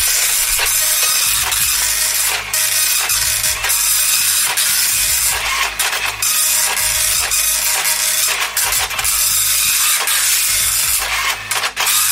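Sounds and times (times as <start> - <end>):
dot matrix printer printing: 0.0 - 12.1.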